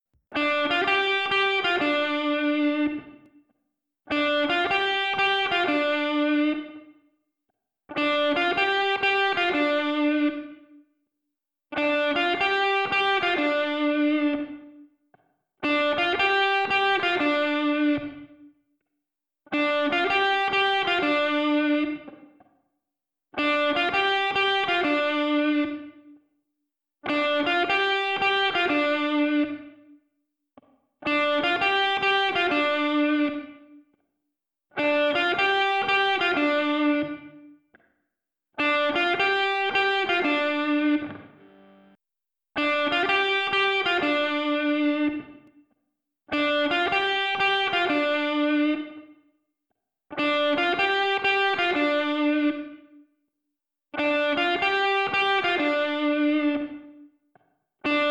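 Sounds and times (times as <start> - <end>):
isolated guitar melody live recording: 0.3 - 3.3, 4.1 - 6.9, 7.9 - 10.7, 11.8 - 14.8, 15.6 - 18.5, 19.5 - 22.3, 23.4 - 26.1, 27.1 - 29.9, 31.1 - 33.8, 34.8 - 37.6, 38.6 - 42.0, 42.6 - 45.5, 46.3 - 49.1, 50.1 - 53.0, 54.0 - 57.1, 57.9 - 58.0.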